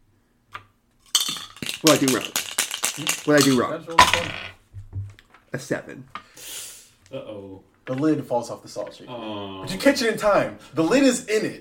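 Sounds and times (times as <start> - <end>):
twenty-sided die rattling across a hard tabletop: 1.0 - 4.6
speech: 1.8 - 2.4, 3.0 - 4.6, 5.5 - 6.2, 7.1 - 11.5.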